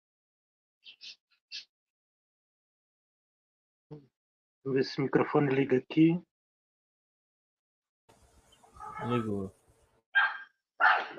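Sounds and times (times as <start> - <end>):
speech: 3.9 - 6.3, 9.0 - 9.6
dog barking: 8.7 - 9.2, 10.2 - 11.1.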